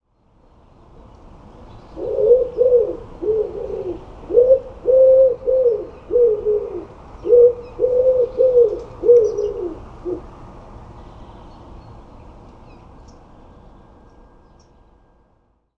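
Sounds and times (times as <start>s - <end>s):
Common Wood Pigeon Columba palumbus calling: 2.0s - 10.3s.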